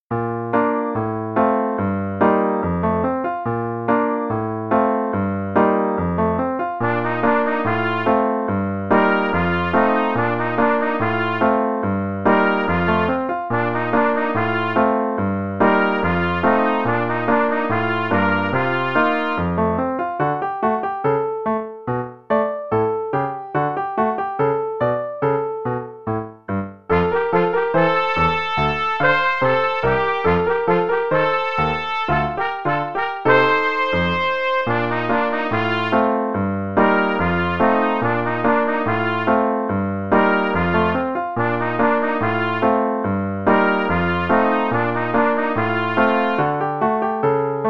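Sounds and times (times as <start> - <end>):
merry-go-round music: 0.1 - 47.6.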